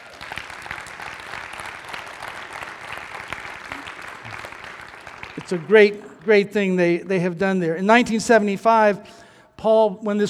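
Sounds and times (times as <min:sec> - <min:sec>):
audience applause: 0:00.0 - 0:06.7
speech: 0:05.4 - 0:10.2.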